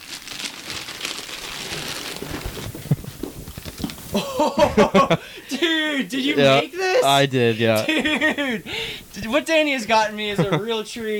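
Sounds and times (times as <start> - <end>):
polka-dot gift wrapping paper crinkling as a present is unwrapped: 0.0 - 4.2
laughter: 4.1 - 8.8, 10.3 - 10.7
speech: 4.2 - 11.1.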